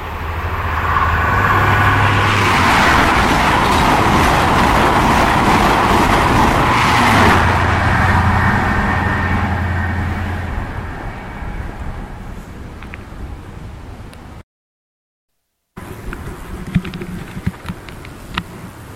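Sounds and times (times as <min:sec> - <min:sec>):
high speed train passing at a level crossing: 0:00.0 - 0:14.4.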